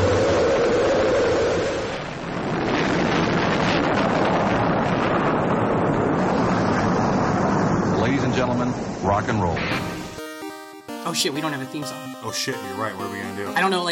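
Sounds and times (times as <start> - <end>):
rocket engine roaring at main engine start: 0.0 - 9.8
speech: 9.2 - 9.8, 11.1 - 13.8.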